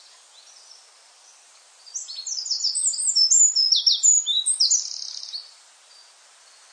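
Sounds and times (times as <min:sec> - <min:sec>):
faint background hiss: 0:00.0 - 0:06.7
Eurasian wren singing: 0:01.9 - 0:05.5.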